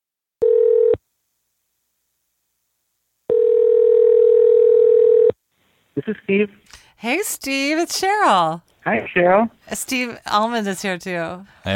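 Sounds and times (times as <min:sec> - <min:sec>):
telephone tone as a call is placed: 0:00.4 - 0:01.0, 0:03.3 - 0:05.4
speech: 0:06.0 - 0:11.7.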